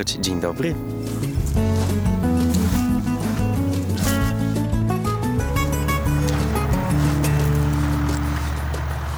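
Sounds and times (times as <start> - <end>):
speech: 0.0 - 1.7
tractor engine droning during field work: 0.0 - 4.6, 5.6 - 9.1.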